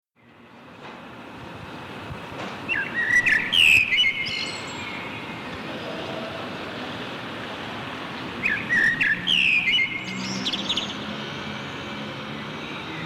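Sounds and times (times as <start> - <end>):
common blackbird song in a backyard in Berlin: 2.7 - 6.4, 8.4 - 11.1.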